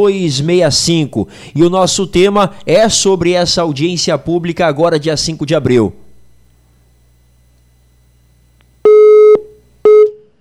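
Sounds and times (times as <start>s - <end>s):
speech: 0.0s - 6.0s
telephone busy tone after a dropped call: 6.1s - 10.3s.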